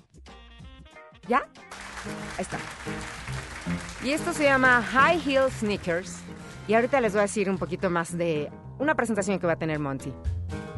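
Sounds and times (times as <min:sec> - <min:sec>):
speech: 0:01.3 - 0:10.3
crowd's steady applause at a live jazz recording: 0:01.7 - 0:07.4.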